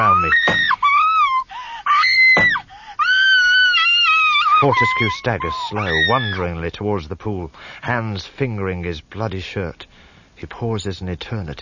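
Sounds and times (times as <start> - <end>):
woman screaming with high-pitched shrieks: 0.0 - 6.4
woman gasping: 1.2 - 3.1
speech: 4.6 - 11.6.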